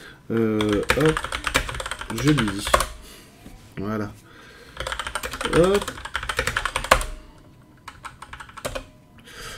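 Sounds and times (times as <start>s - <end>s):
speech: 0.3s - 1.4s, 2.1s - 2.9s, 3.8s - 4.2s, 5.4s - 6.0s
rapid computer keyboard typing: 0.3s - 3.0s, 4.7s - 9.0s.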